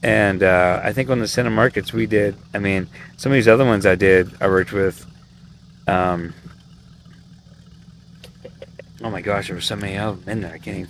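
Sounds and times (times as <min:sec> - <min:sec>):
speech: 0:00.0 - 0:05.1, 0:05.9 - 0:06.4, 0:09.0 - 0:10.8
boat engine idling roughly with a rough carburetor: 0:00.0 - 0:10.8
sharp ticks and knocks: 0:06.4 - 0:09.0.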